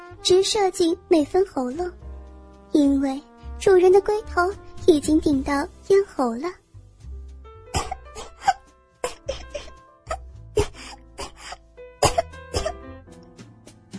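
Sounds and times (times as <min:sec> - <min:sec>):
speech: 0:00.2 - 0:02.0, 0:02.7 - 0:06.6
violent harsh coughing fits: 0:07.7 - 0:12.8
ragged gasping breaths: 0:08.1 - 0:11.7.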